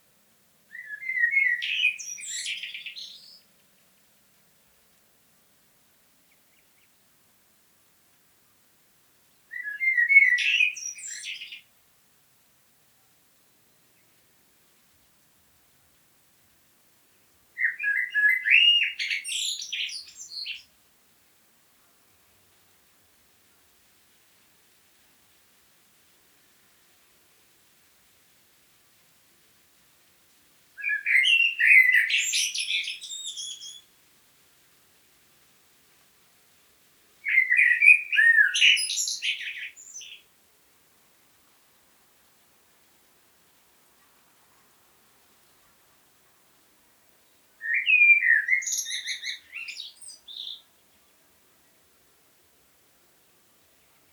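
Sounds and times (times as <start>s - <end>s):
blackbird singing: 0.7s - 3.5s, 9.5s - 11.7s, 17.6s - 20.7s, 30.8s - 33.9s, 37.2s - 40.2s, 47.6s - 50.7s.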